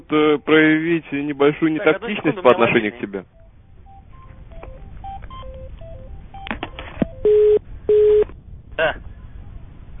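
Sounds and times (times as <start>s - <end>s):
speech: 0.0s - 3.4s, 8.8s - 9.1s
telephone keypad tones: 3.4s - 8.3s.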